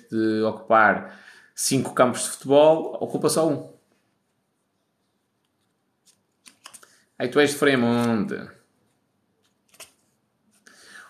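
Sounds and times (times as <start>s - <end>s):
speech: 0.1s - 3.8s, 7.2s - 8.6s
pen scratching: 5.3s - 6.9s, 8.8s - 10.6s
pen clicking: 5.4s - 6.9s, 9.4s - 10.0s.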